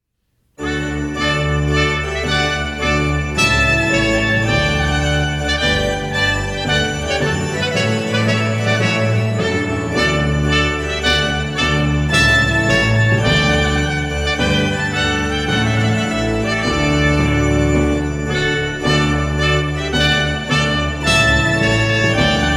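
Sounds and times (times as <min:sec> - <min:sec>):
timpani in wedding ceremony music: 0:00.6 - 0:22.5
two trumpets playing wedding ceremony music: 0:00.6 - 0:22.5.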